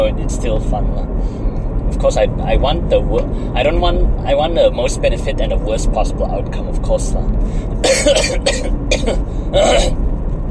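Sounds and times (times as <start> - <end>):
speech: 0.1 - 10.1
throat clearing: 7.8 - 10.0
wet coughs: 7.8 - 10.0.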